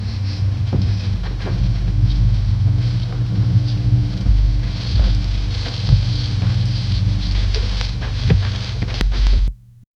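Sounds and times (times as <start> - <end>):
low abstract train carriage ambience: 0.0 - 9.8.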